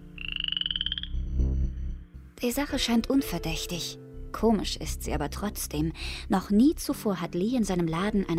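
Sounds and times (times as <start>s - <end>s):
frog rapid high pulsing trill: 0.0s - 1.8s
speech: 2.4s - 8.3s.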